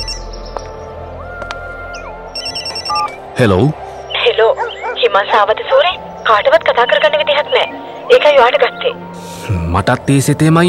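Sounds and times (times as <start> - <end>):
mobile phone ringing with a bird-like electronic tone: 2.4 - 3.2
speech: 3.4 - 3.8, 4.4 - 10.6.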